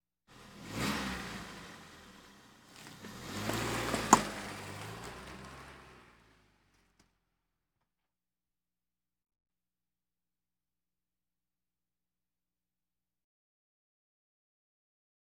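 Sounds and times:
various automobiles: 0.3s - 7.2s.

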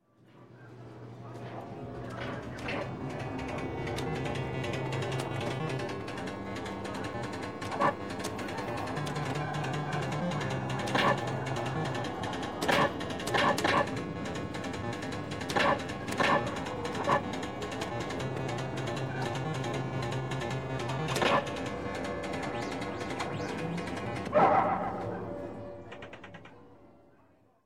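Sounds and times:
arcade video game: 0.1s - 27.2s.

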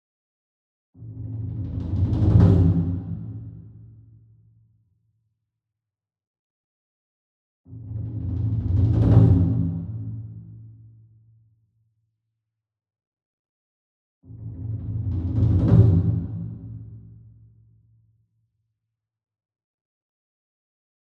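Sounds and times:
28 inch taiko drum roll with soft beater, far: 1.1s - 3.8s, 7.8s - 10.3s, 14.4s - 17.0s.

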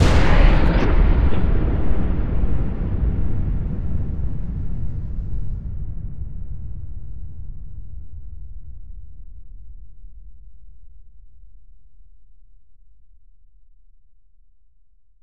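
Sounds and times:
thunder slam sting: 0.0s - 5.6s.

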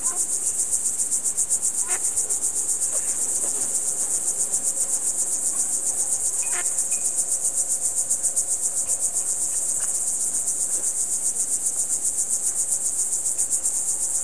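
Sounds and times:
cricket chirping: 0.0s - 14.2s.

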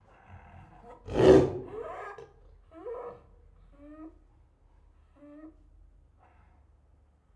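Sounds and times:
tigers roaring angrily: 1.1s - 1.9s.

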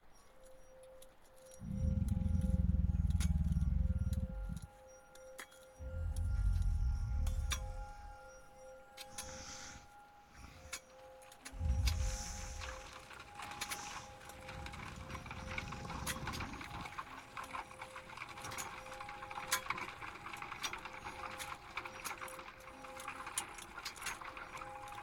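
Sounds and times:
ambience at Cristallo gargoyles: 0.0s - 25.0s.

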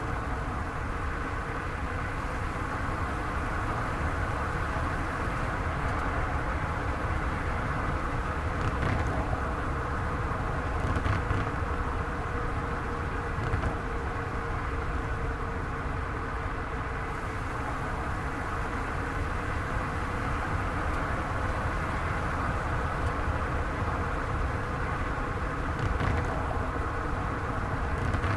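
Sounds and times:
tires on asphalt: 0.0s - 28.3s.

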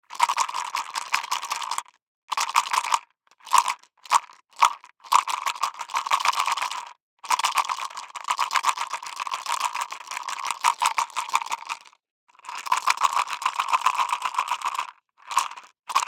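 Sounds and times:
six dice shaken in a plastic cup: 0.2s - 16.0s.

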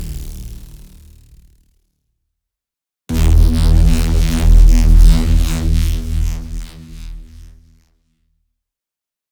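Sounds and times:
brutal force blast: 3.1s - 7.7s.

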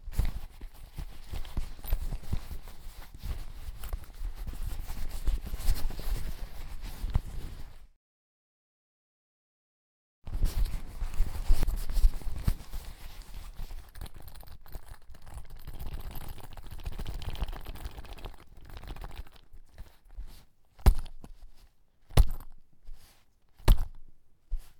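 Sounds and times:
purse handle: 0.1s - 7.4s, 10.6s - 24.7s
purse dropping: 13.5s - 21.4s, 22.1s - 22.6s, 23.6s - 24.1s.

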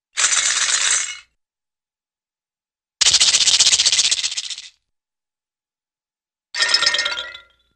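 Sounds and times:
gourd rattle: 0.2s - 1.2s, 3.0s - 4.8s.

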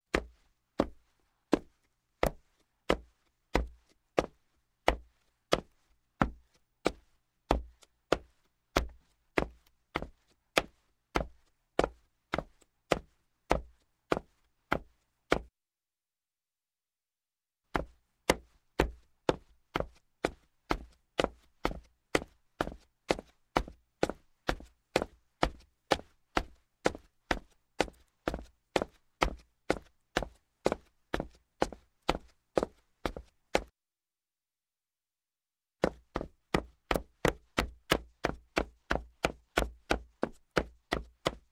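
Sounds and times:
boot footsteps walking slowly down wooden steps: 0.1s - 15.5s, 17.8s - 33.7s, 35.8s - 41.4s.

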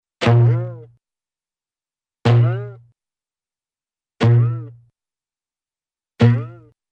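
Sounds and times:
cartoon harp boings for shooting arrows: 2.3s - 2.8s, 4.2s - 4.8s, 6.2s - 6.8s.

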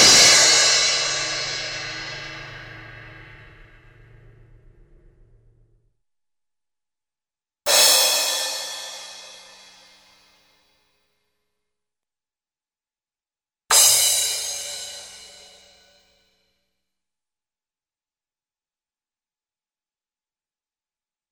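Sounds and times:
cartoon cymbal crash: 0.1s - 4.5s, 7.7s - 10.1s, 13.7s - 15.8s.

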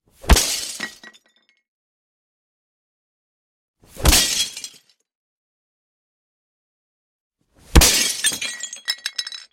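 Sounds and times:
glass being kicked: 0.3s - 1.5s, 4.0s - 4.9s, 7.7s - 9.5s.

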